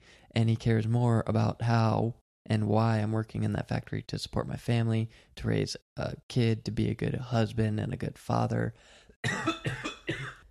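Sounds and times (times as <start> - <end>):
speech: 0.4 - 9.8
harsh chesty coughs: 9.2 - 10.5.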